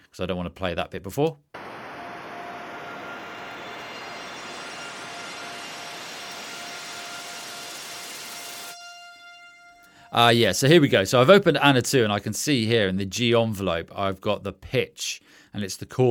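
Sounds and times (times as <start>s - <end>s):
speech: 0.2s - 1.6s, 10.1s - 16.0s
band-pass filtered white noise: 1.6s - 4.0s
high sustained string tones: 1.6s - 10.9s.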